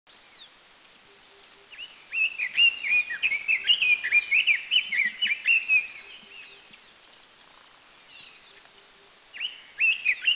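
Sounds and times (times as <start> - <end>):
red-billed leiothrix calling in Dirang India: 1.0 - 10.3.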